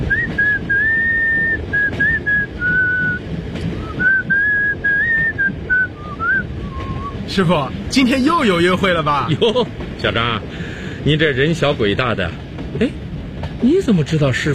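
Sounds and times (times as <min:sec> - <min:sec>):
train driver whistling a tune aboard a passenger train: 0:00.0 - 0:03.2, 0:03.8 - 0:07.2
speech: 0:07.4 - 0:13.0, 0:13.6 - 0:14.5.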